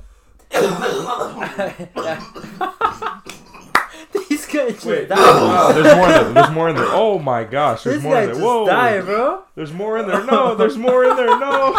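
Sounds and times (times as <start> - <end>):
harsh raspy coughing fit after a smoking hit: 0.5 - 3.7, 5.1 - 5.9, 6.8 - 7.1
speech: 0.6 - 2.7, 4.5 - 11.7
laughter: 0.7 - 6.9, 10.0 - 11.7.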